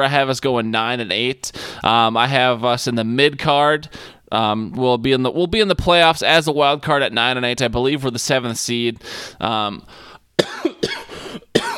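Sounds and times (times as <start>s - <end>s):
speech: 0.0s - 10.1s
harsh sharp coughs: 10.4s - 11.7s
throat clearing: 10.4s - 11.7s.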